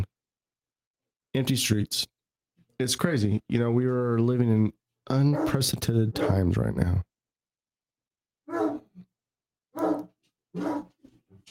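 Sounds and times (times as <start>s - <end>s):
speech: 1.3s - 2.1s, 2.8s - 7.1s, 10.6s - 10.9s
dog barking deep woofs: 5.3s - 5.6s, 6.2s - 6.6s, 8.5s - 9.0s, 9.7s - 11.0s.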